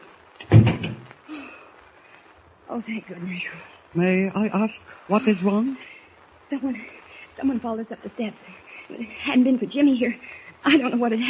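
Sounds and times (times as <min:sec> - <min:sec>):
door pushed shut with a solid thud: 0:00.4 - 0:01.0
speech: 0:02.7 - 0:05.9, 0:06.5 - 0:11.2.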